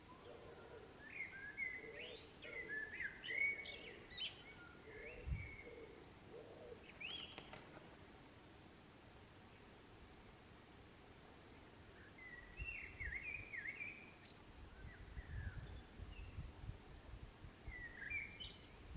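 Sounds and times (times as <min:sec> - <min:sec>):
faint hiss: 0:00.0 - 0:18.9
blackbird singing in a park: 0:00.1 - 0:06.0, 0:06.8 - 0:07.4, 0:12.0 - 0:16.5, 0:17.7 - 0:18.9.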